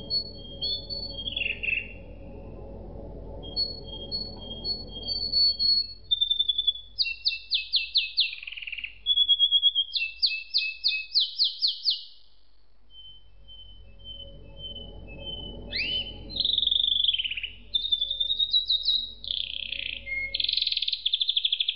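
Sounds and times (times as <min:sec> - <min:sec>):
low hum: 0:00.0 - 0:07.0, 0:12.8 - 0:20.6
canary singing: 0:00.0 - 0:12.3, 0:12.9 - 0:21.7.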